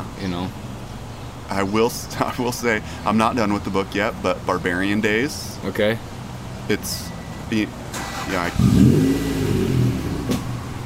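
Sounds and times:
speech: 0:00.2 - 0:00.7, 0:01.5 - 0:06.1, 0:06.7 - 0:09.0
sports car engine revving behind trees: 0:07.9 - 0:10.8.

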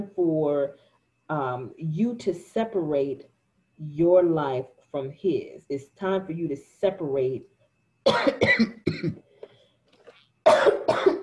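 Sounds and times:
speech: 0:00.0 - 0:09.2
harsh coughing from a dry throat after a lot of talking: 0:08.1 - 0:09.2, 0:10.5 - 0:11.2.

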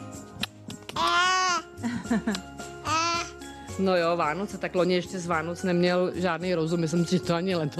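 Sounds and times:
one-year-old boy babbling: 0:01.0 - 0:01.7, 0:02.8 - 0:03.4
speech: 0:02.1 - 0:02.6, 0:03.8 - 0:07.7.

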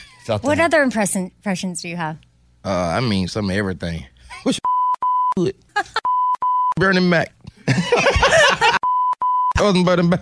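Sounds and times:
speech: 0:00.2 - 0:04.6, 0:05.4 - 0:06.0, 0:06.8 - 0:08.5, 0:09.6 - 0:10.2
censor beep: 0:04.6 - 0:05.4, 0:06.0 - 0:06.8, 0:08.8 - 0:09.6
laughter: 0:05.8 - 0:06.1, 0:07.6 - 0:08.9.

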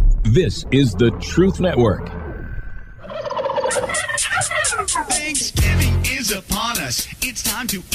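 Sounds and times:
speech: 0:00.4 - 0:02.2, 0:05.3 - 0:07.9
turkey gobbling: 0:03.0 - 0:05.6.

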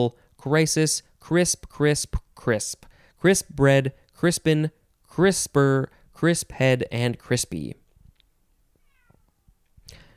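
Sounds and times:
speech: 0:00.0 - 0:07.8
cat meowing: 0:08.7 - 0:09.5.

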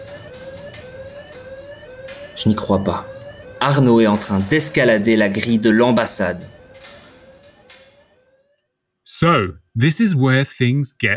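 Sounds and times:
electronic alarm ringing: 0:00.0 - 0:08.7
speech: 0:02.4 - 0:06.6, 0:09.2 - 0:11.1.

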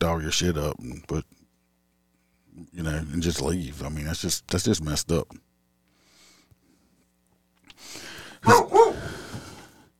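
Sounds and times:
speech: 0:00.0 - 0:01.4, 0:02.6 - 0:05.5, 0:07.8 - 0:09.2
steady low hiss: 0:00.0 - 0:08.4
dog barking sharply: 0:08.4 - 0:09.1.

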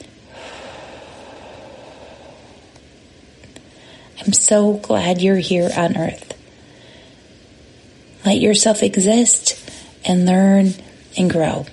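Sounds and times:
forceful exhale of breath: 0:00.3 - 0:02.8
speech: 0:04.2 - 0:06.3, 0:08.3 - 0:11.7.

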